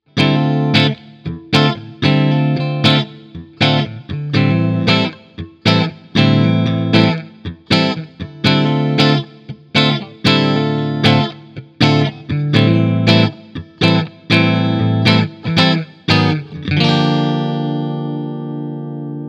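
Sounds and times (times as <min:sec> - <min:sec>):
clean electric guitar through amp simulation with 4x12 cabinet: 0:00.0 - 0:19.2.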